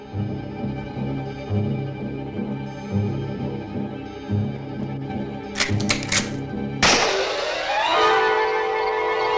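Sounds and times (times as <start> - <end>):
low droning musical background: 0.0 - 9.3
shotgun blast: 5.6 - 7.7.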